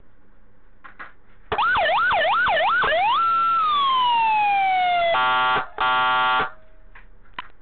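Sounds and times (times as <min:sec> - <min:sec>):
12V megaphone siren with three tones: 0:01.6 - 0:06.6.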